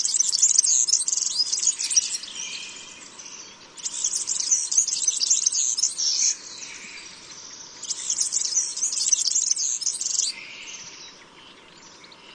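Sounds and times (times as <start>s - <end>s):
European serin singing high-pitched jingling sizzling song: 0.0s - 12.3s.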